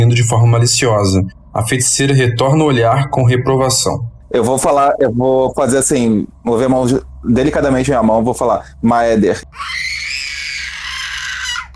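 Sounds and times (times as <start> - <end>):
speech: 0.0 - 10.0
voice imitating a baby crying: 9.5 - 11.7.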